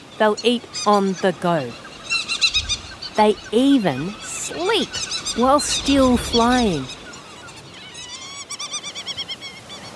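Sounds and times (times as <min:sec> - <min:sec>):
speech: 0:00.2 - 0:01.8, 0:03.2 - 0:07.0
Providence petrel calls on Lord Howe Island, Australia: 0:00.3 - 0:08.2.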